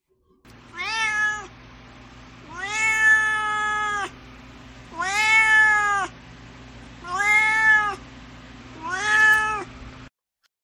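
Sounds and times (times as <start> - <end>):
low constant hum: 0.1 - 10.1
cat meowing: 0.7 - 1.5, 2.4 - 4.2, 4.9 - 6.1, 7.0 - 8.0, 8.8 - 9.7.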